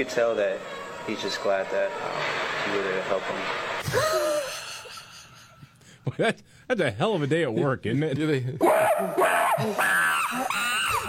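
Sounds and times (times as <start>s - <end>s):
speech: 0.0s - 4.3s, 6.2s - 10.7s
person imitating a monkey with shrill screeches: 8.6s - 11.0s.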